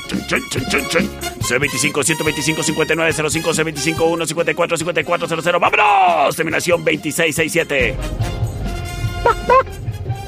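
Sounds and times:
speech: 0.1 - 8.4, 9.2 - 9.8
sharp dog barks: 9.2 - 9.7.

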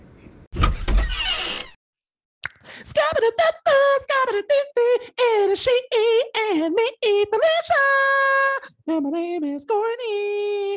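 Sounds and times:
pantry door opening with a low thump and sliding swish: 0.6 - 1.8
speech: 2.9 - 10.7.

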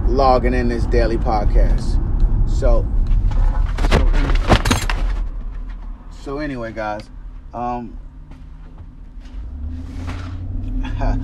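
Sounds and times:
car engine rumble inside a moving car: 0.0 - 11.2
speech: 0.2 - 3.5, 6.2 - 8.0, 11.0 - 11.2.

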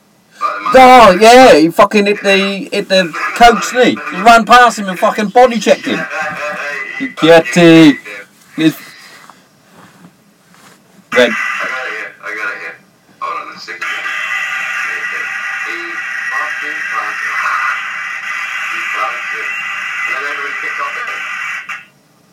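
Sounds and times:
static hiss on playback: 0.0 - 22.3
indistinct voices: 0.4 - 9.3, 11.1 - 21.8
speech: 0.6 - 8.8, 11.2 - 11.5.

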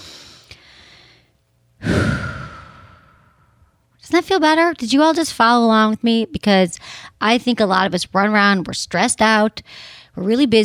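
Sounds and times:
deep breath: 0.0 - 3.8, 9.7 - 10.1
speech: 4.1 - 10.6.

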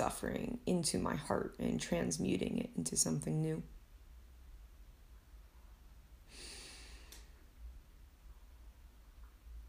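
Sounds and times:
speech: 0.0 - 3.8
deep airy breath drawn in during meditation: 6.3 - 7.4.

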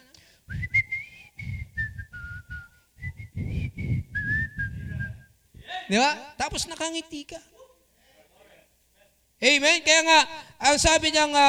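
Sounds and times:
person whistling a cheerful tune: 0.5 - 5.4
soft low rumbling: 0.5 - 5.6
speech: 5.9 - 7.5, 9.4 - 11.4.

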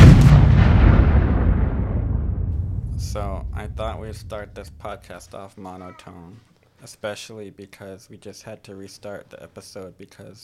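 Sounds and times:
bomb explosion sound effect with low heavy roar: 0.0 - 5.3
speech: 3.6 - 10.4.

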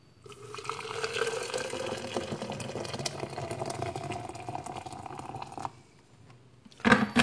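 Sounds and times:
hot water pouring onto coffee grounds in Perth: 0.2 - 5.7.

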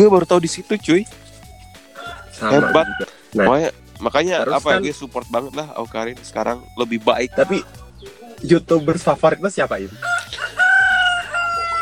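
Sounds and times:
speech: 0.0 - 1.2, 2.4 - 10.5
rooster crowing: 1.9 - 3.2, 4.4 - 4.8, 10.0 - 11.8.

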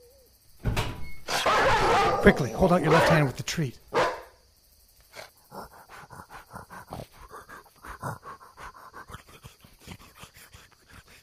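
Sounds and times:
door being pulled open with the right hand: 0.6 - 1.4
speech: 2.2 - 3.8.

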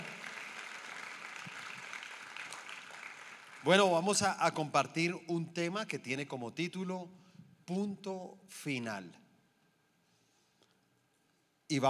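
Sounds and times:
audience applauding: 0.0 - 3.8
speech: 3.6 - 9.2.

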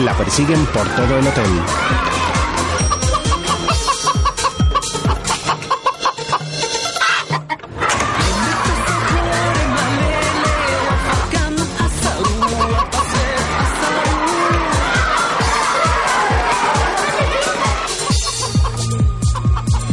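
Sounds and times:
speech: 0.0 - 2.3
laughter: 0.0 - 6.4, 7.0 - 19.9
chicken clucking in agitated bursts: 2.9 - 7.7, 12.1 - 13.0.

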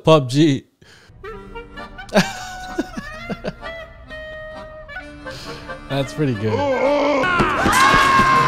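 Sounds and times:
speech: 0.0 - 0.7, 2.1 - 2.5, 5.9 - 8.3
laughter: 2.1 - 3.8
loud crowd screaming and cheering: 6.9 - 8.4.

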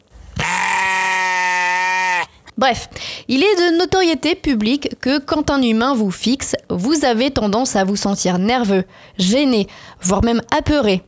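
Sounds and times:
single sheep bleating: 0.2 - 2.4
speech: 2.6 - 11.0.

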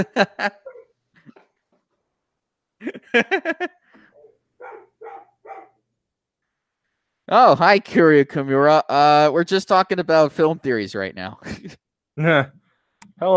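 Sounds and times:
speech: 0.0 - 0.6, 2.8 - 3.8, 7.3 - 12.6, 13.2 - 13.3
laughter: 0.0 - 0.8, 2.8 - 3.9, 11.4 - 11.8
dog barking: 4.2 - 5.8.

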